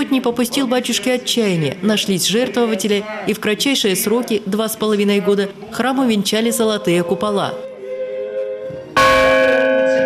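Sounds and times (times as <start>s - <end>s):
speech: 0.1s - 7.7s
rynda ship's bell ringing as a church call to prayer: 9.0s - 10.0s.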